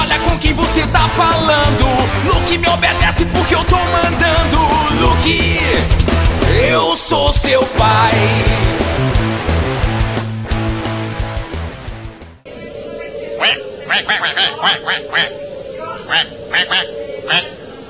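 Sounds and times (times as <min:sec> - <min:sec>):
bright electronic music: 0:00.0 - 0:12.4
speech: 0:00.8 - 0:03.0, 0:14.2 - 0:15.5
voice imitating a duck with nasal quacks: 0:13.4 - 0:17.6.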